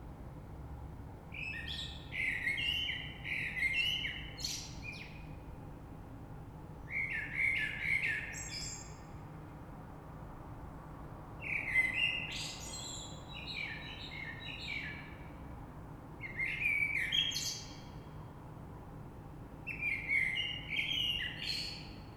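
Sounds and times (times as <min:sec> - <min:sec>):
faint background noise: 0:00.0 - 0:22.1
common blackbird song: 0:01.4 - 0:05.3, 0:11.4 - 0:15.2, 0:16.2 - 0:18.0, 0:19.7 - 0:22.1.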